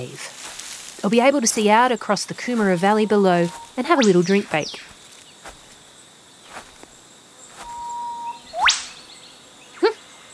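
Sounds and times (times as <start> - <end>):
speech: 0.0 - 0.3, 1.0 - 4.9
faint rustling: 0.0 - 8.1
Eastern Whipbird whip-crack call in forest near the Coomera Valley: 7.6 - 9.0.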